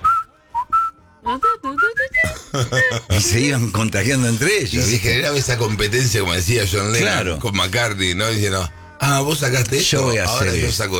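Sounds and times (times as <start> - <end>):
person whistling a short melodic tune: 0.0 - 3.1
speech: 1.3 - 10.9
laughter: 2.1 - 5.7.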